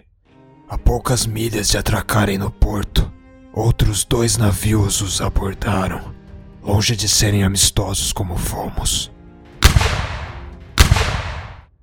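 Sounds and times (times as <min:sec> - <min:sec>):
speech: 0:00.7 - 0:09.2
cannon blasts: 0:09.6 - 0:11.7.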